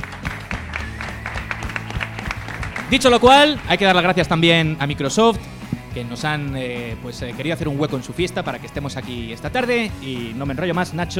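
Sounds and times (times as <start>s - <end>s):
audience applause at a video game fan festival: 0.0s - 4.2s
speech: 2.9s - 11.1s.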